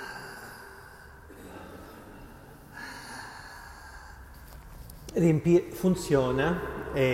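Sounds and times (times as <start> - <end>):
slow deep rhythmic breathing through an open mouth: 0.0 - 4.8
speech: 5.2 - 7.1.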